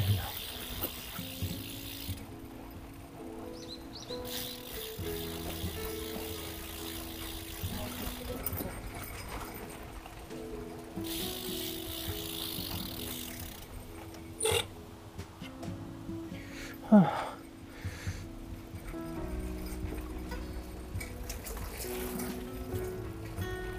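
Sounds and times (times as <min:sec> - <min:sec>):
folding bicycle with high tyre pressure rattling over a rough bumpy road: 0:00.0 - 0:23.7.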